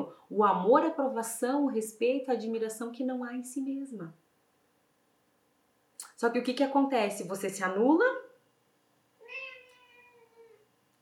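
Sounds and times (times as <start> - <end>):
speech: 0.3 - 4.2, 6.2 - 8.2
cat meowing: 9.2 - 10.7.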